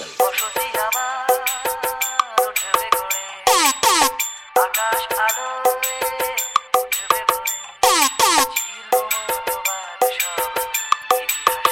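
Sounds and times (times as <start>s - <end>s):
vocal test: 0.0s - 11.3s
bright electronic treble test tones: 3.5s - 4.7s, 7.8s - 8.6s.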